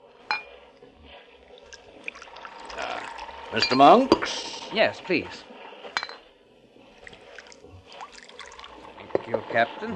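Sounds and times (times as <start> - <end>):
wine pouring into a glass at a dinner table: 1.5 - 4.2, 7.0 - 9.0
speech: 3.5 - 5.5, 9.5 - 9.9
glass clink: 3.6 - 4.2, 6.0 - 6.2.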